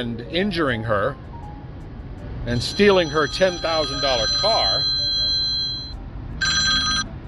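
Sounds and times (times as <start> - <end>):
speech: 0.0 - 1.3, 2.4 - 5.0
electronic telephone ringing: 2.6 - 7.0.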